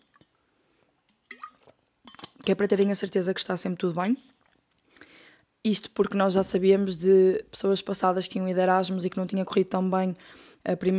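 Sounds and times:
person sipping water: 0.0 - 2.2
speech: 2.4 - 4.3, 5.6 - 10.9.

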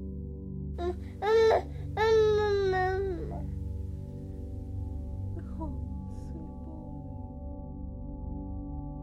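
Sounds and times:
baby boy saying mama in a whiny voice: 0.8 - 3.5.

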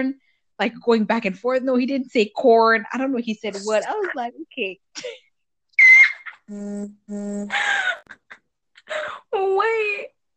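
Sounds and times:
speech: 0.0 - 5.2, 6.5 - 8.3, 8.9 - 10.2
phone vibrating with notification: 6.5 - 7.6.

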